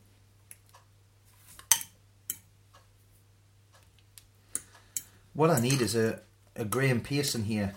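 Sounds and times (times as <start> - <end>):
spoon stirring beans with chilies, pepper and salt in a pot: 1.7 - 2.5, 4.6 - 6.0
speech: 5.4 - 7.7.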